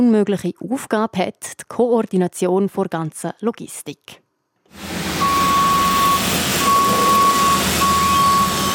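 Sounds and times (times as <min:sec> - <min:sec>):
speech: 0:00.0 - 0:04.9
trucks and forklifts engines rumbling at ice rink in Davos: 0:04.9 - 0:08.7
vehicle reversing beeps: 0:05.2 - 0:08.7.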